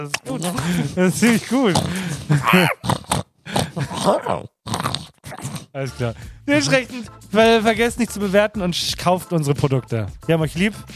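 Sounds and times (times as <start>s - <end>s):
speech: 0.0s - 2.9s, 4.0s - 4.5s, 5.8s - 10.9s
person imitating a pig with nasal grunts and oinks: 1.6s - 5.8s.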